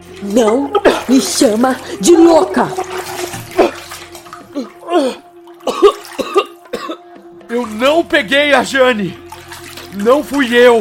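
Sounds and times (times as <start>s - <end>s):
water sloshing and splashing from a head dunked in water: 0.0s - 10.7s
speech: 0.2s - 3.1s, 7.8s - 9.2s, 10.0s - 10.7s
person coughing and gasping: 0.7s - 1.2s, 3.5s - 7.2s.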